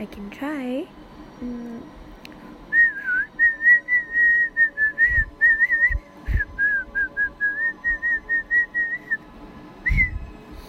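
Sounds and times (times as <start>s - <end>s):
speech: 0.0s - 2.0s
person whistling short pulsed notes: 2.7s - 9.2s, 9.8s - 10.3s.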